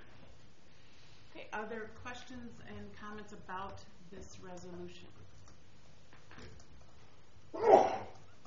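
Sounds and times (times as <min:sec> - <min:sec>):
speech: 0:01.4 - 0:05.2
person sneezing: 0:07.6 - 0:08.2.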